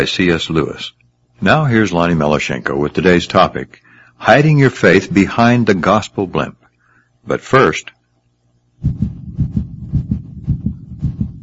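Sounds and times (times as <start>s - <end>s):
speech: 0.0s - 6.6s, 7.2s - 8.0s, 8.8s - 9.1s
heartbeat pounding: 8.8s - 11.4s.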